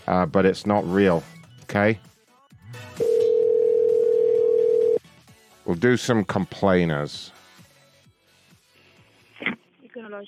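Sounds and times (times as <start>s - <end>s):
speech: 0.1s - 2.1s, 5.7s - 7.4s
steady telephone dial tone for a prank call: 3.0s - 5.0s.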